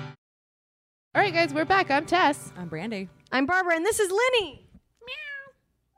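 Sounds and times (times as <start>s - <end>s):
speech: 1.3s - 5.2s
cat meowing: 5.0s - 5.9s.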